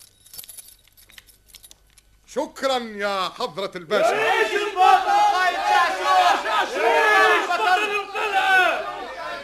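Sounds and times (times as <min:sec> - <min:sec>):
bunch of keys jangling as handed over: 0:00.0 - 0:02.2
speech: 0:02.3 - 0:09.0.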